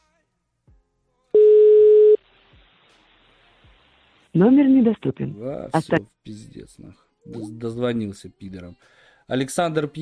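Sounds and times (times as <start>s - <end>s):
telephone line tone after dialing a number: 1.4s - 2.2s
speech: 4.4s - 10.0s.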